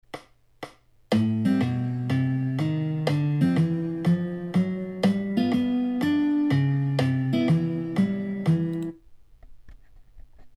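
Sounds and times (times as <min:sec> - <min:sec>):
jazz bass chord: 0:01.1 - 0:08.9.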